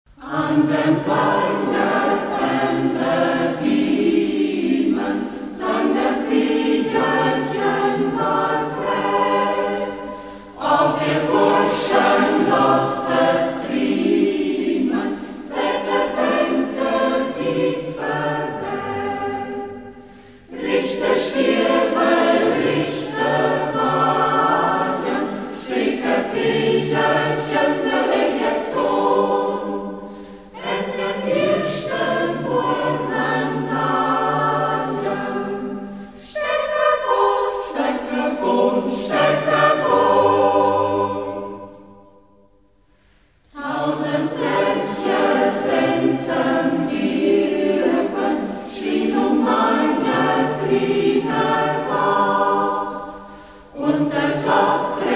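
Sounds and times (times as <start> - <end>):
choir singing in Upper Saxon dialect: 0.1 - 55.1.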